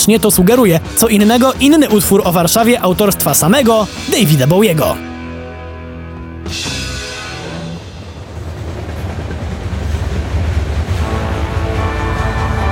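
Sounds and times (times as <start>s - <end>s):
speech: 0.0s - 5.1s, 6.5s - 6.7s
train rumbling along the rails: 7.2s - 12.7s.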